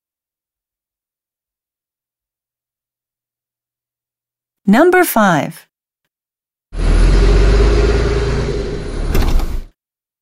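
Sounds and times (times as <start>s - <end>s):
speech: 4.7s - 5.7s
bus engine rumbling: 6.8s - 9.7s.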